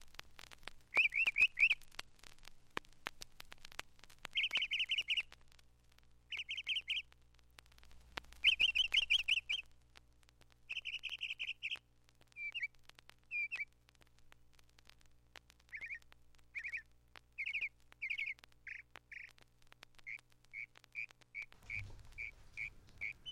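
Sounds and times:
songbird singing a medley of repeated phrases: 0:00.9 - 0:01.8, 0:04.3 - 0:05.3, 0:06.3 - 0:07.1, 0:08.4 - 0:09.7, 0:10.7 - 0:11.8, 0:12.4 - 0:13.7, 0:15.7 - 0:19.3, 0:20.0 - 0:23.2.

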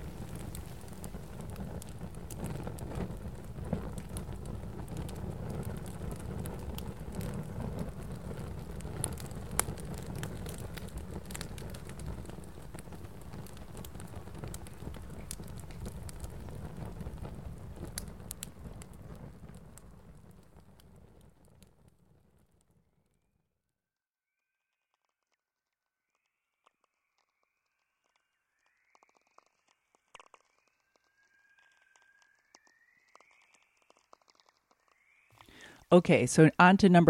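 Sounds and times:
sharp pops and snaps of fire: 0:00.0 - 0:19.8, 0:26.6 - 0:35.9
fire crackling: 0:00.0 - 0:23.2, 0:26.2 - 0:37.0
speech: 0:35.9 - 0:37.0.

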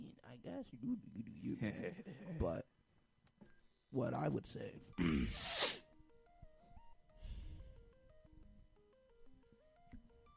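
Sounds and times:
speech: 0:00.4 - 0:02.7, 0:03.9 - 0:05.5
loud sharp sneeze: 0:05.0 - 0:05.8
gentle melodic music: 0:05.8 - 0:10.3
soft breathy sound: 0:07.1 - 0:08.0.

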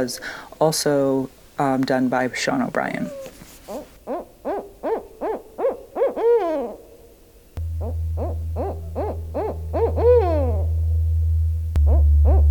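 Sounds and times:
speech: 0:00.0 - 0:03.3
Barred Owl hooting: 0:03.0 - 0:11.0, 0:11.8 - 0:12.4
low hum: 0:07.6 - 0:12.4.

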